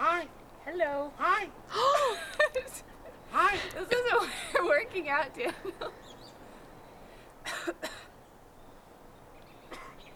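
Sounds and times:
speech: 0.8s - 2.8s, 3.5s - 6.0s
person making raspy cough-like bursts: 9.7s - 10.0s.

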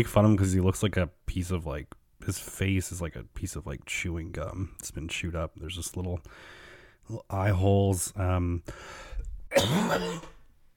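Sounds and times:
speech: 0.0s - 10.4s
faint breathy noise: 6.2s - 7.1s, 8.6s - 9.4s
person coughing: 9.5s - 10.4s
throat clearing: 9.5s - 10.4s.

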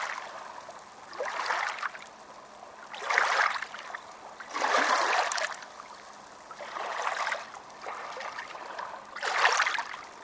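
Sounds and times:
small waves washing onto a beach: 0.0s - 2.1s, 2.9s - 10.2s.

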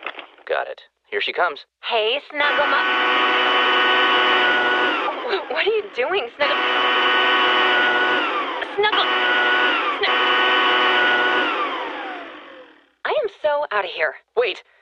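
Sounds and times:
speech: 0.5s - 3.8s, 5.3s - 7.4s, 8.8s - 9.4s, 13.4s - 14.7s
cordless leaf blower running: 2.4s - 13.0s.

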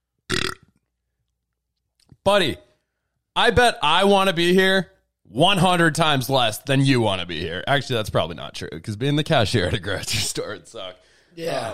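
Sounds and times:
burp: 0.3s - 0.8s
speech: 2.2s - 2.7s, 3.4s - 11.7s.

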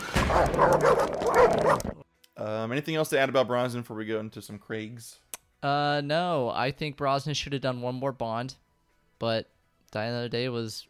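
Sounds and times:
pack of hounds barking and yipping excitedly: 0.1s - 2.0s
speech: 2.6s - 8.6s, 9.2s - 10.8s.

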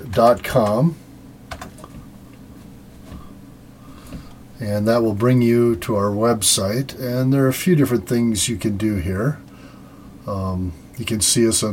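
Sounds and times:
steady low hum: 0.0s - 11.7s
speech: 0.2s - 1.0s, 4.6s - 9.4s, 10.3s - 11.7s
typing on a computer keyboard: 1.5s - 2.0s.

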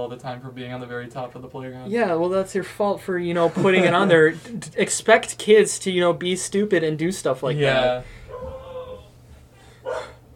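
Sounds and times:
speech: 0.0s - 8.4s
low hum: 0.0s - 10.3s
laughter: 3.4s - 4.7s
dog giving a drawn-out whining bark: 8.3s - 9.0s, 9.8s - 10.2s.

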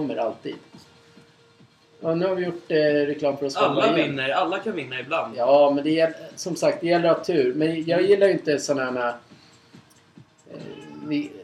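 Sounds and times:
speech: 0.0s - 0.9s, 2.0s - 9.3s, 10.5s - 11.4s
cat meowing: 10.5s - 11.4s.

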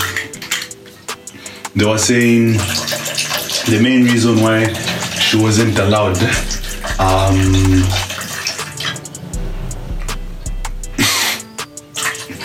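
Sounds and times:
liquid pouring: 0.0s - 9.4s, 11.9s - 12.4s
speech: 1.8s - 8.0s
low hum: 6.4s - 8.1s, 8.8s - 11.0s.

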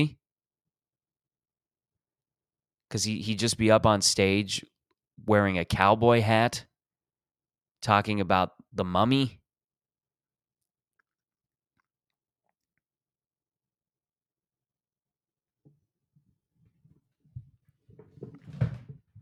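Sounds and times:
speech: 2.9s - 6.7s, 7.8s - 9.4s
chair creaking and knocking: 16.7s - 19.1s.

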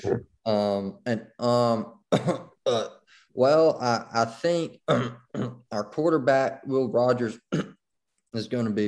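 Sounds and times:
speech: 0.0s - 7.7s, 8.3s - 8.8s
man clearing his throat: 2.1s - 2.9s, 4.9s - 5.6s, 7.5s - 7.8s
man coughing: 2.2s - 2.9s, 4.9s - 5.6s, 7.5s - 7.8s.

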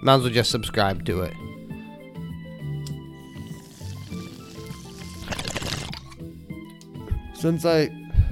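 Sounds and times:
speech: 0.0s - 1.5s, 7.4s - 8.0s
water bubbling through a bong: 3.3s - 6.2s.

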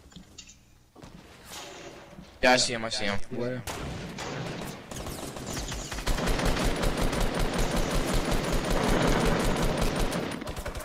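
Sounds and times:
speech: 2.4s - 4.0s
rapid automatic gunfire in a video game: 4.2s - 10.8s.

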